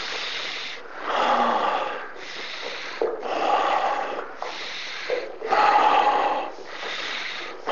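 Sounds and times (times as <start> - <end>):
deep rhythmic breathing with a snore-like rasp: 0.0 - 7.7.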